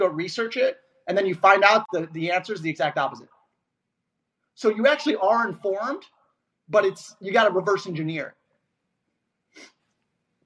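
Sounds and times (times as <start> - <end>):
speech: 0.0 - 3.4, 4.6 - 8.4, 9.6 - 9.8
sniff through a stuffy nose: 9.5 - 10.0.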